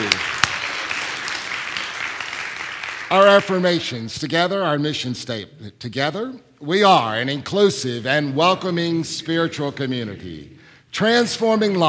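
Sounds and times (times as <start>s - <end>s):
audience applause at a spiritual community gathering: 0.0s - 3.1s
sharp clap: 0.0s - 3.1s
speech: 3.1s - 11.8s.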